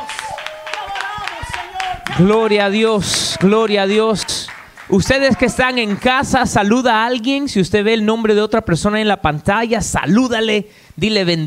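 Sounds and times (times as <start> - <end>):
people shouting and cheering: 0.0 - 6.8
audience applauding: 0.0 - 6.9
speech: 2.2 - 4.2, 4.9 - 11.4.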